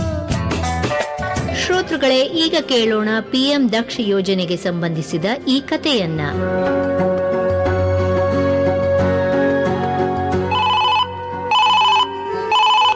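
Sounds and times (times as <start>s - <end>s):
steady music: 0.0s - 12.9s
speech: 1.8s - 7.0s
electronic telephone ringtone chirping: 10.5s - 12.9s.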